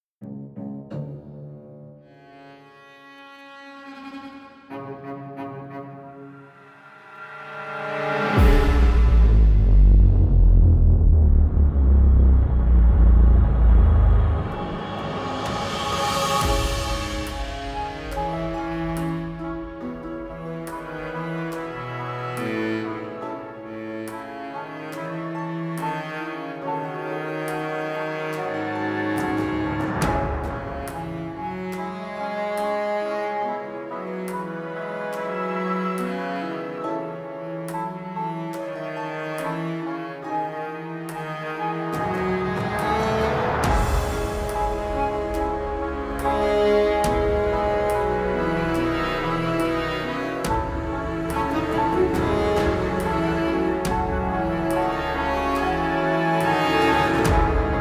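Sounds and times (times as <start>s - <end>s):
solo cello: 0.3s - 11.8s, 12.6s - 57.8s.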